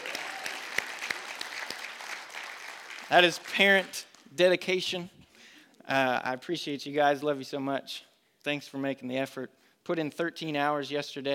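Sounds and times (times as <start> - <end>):
room full of people clapping: 0.0 - 3.8
speech: 3.1 - 5.2, 5.9 - 11.3.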